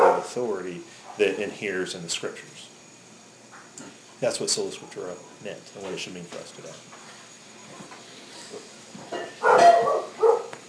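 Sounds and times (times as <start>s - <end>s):
dog guarding the perimeter barking: 0.0s - 0.3s, 9.4s - 10.6s
speech: 0.3s - 2.7s, 3.8s - 7.0s.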